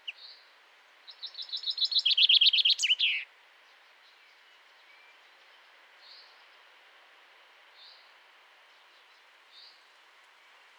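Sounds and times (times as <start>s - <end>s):
common chaffinch Fringilla coelebs song: 1.1s - 3.2s.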